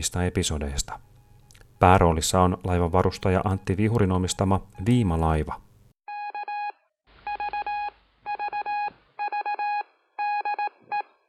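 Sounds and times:
speech: 0.0s - 1.1s, 1.8s - 5.6s
Morse code beeps from a radio transmission: 6.1s - 11.1s.

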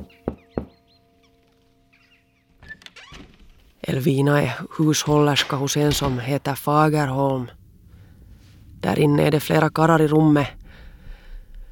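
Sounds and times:
knocking on a wooden door: 0.0s - 0.8s
speech: 3.9s - 7.6s, 8.8s - 10.6s.

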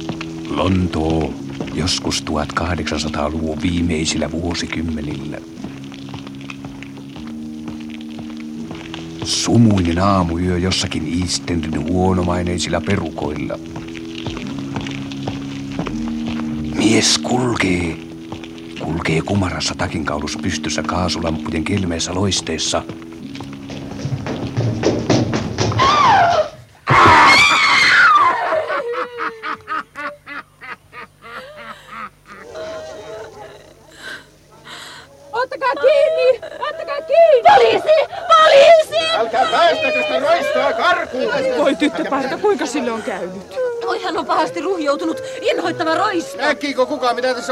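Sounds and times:
speech: 0.5s - 5.7s, 9.3s - 13.9s, 17.0s - 18.0s, 19.0s - 23.0s, 45.9s - 47.4s
thudding impacts of trampling: 23.4s - 27.3s
girl screaming while knocked down and trampled at a foggy street corner: 25.8s - 29.8s, 35.6s - 40.5s, 43.5s - 46.5s
laughter: 27.0s - 47.4s
commotion of agitated voices and cries: 34.5s - 47.4s.

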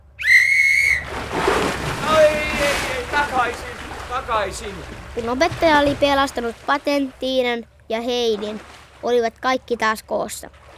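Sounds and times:
single sharp steady whistle blast: 0.2s - 1.1s
water splashing and sloshing outdoors: 0.8s - 10.7s
speech: 4.3s - 10.6s.

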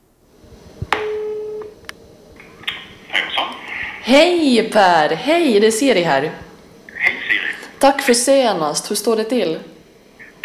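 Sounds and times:
phone line tone while calling someone: 1.0s - 1.8s
speech: 4.1s - 6.4s, 7.8s - 9.7s.

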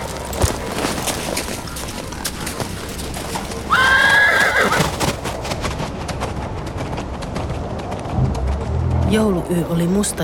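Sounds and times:
horse hooves clip-clopping: 0.0s - 10.2s
noisy outdoor background: 0.0s - 10.2s
horse neighing: 3.7s - 4.9s
speech: 9.2s - 10.2s.

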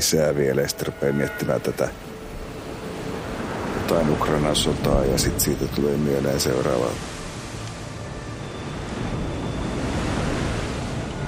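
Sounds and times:
speech: 0.0s - 2.1s, 3.9s - 7.1s
gusty wind buffeting across sea waves: 0.0s - 11.2s
sea waves roaring: 0.0s - 11.2s.

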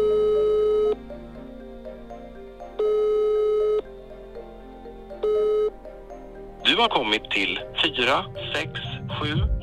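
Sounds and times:
telephone ringback tone on an outgoing call to Sweden: 0.0s - 1.6s, 2.7s - 4.0s, 5.0s - 6.0s
speech: 6.8s - 9.6s.

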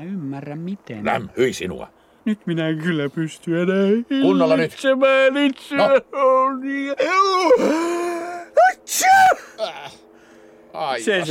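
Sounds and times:
speech: 0.0s - 8.0s, 8.9s - 10.0s, 10.8s - 11.2s
voiced gasping inhales inside a spacesuit helmet: 10.1s - 10.7s.

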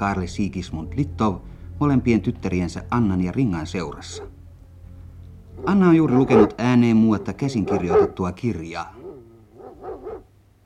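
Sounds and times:
speech: 0.0s - 4.3s, 5.6s - 9.0s
dog barking at a manor house: 4.0s - 4.4s, 5.6s - 6.6s, 7.2s - 8.3s, 9.0s - 10.3s.

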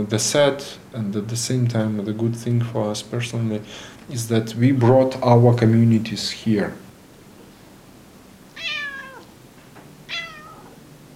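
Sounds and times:
speech: 0.0s - 6.8s
quiet room hum: 0.0s - 11.1s
cat meowing on a chair: 8.5s - 9.3s, 10.0s - 10.8s.

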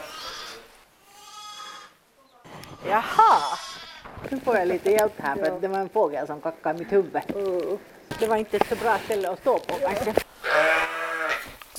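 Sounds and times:
three-day-old lamb bleating on a sheep farm: 0.0s - 2.0s, 2.6s - 4.1s, 10.4s - 11.5s
speech: 2.8s - 3.6s, 4.3s - 10.7s.

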